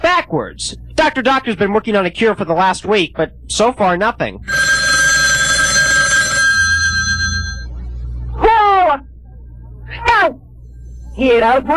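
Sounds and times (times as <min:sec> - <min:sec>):
low hum: 0:00.0 - 0:11.7
speech: 0:00.3 - 0:04.7, 0:11.2 - 0:11.7
telephone ringing with a bright tone: 0:04.4 - 0:07.8.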